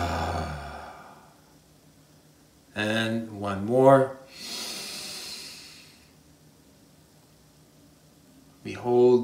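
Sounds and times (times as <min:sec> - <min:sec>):
slow breath exhale during a guided breathing exercise: 0:00.0 - 0:01.4, 0:04.3 - 0:06.2
speech: 0:02.8 - 0:04.5, 0:08.7 - 0:09.2.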